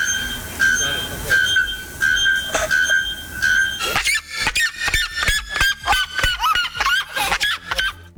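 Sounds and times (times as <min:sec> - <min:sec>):
extremely loud bird calls at about 120 decibels: 0:00.0 - 0:05.7
laughter: 0:00.0 - 0:08.1.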